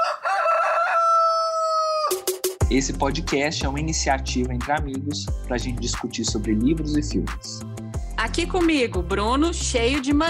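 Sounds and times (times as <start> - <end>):
rooster crowing cock-a-doodle-doo: 0.0 - 2.3
speech: 2.7 - 10.2.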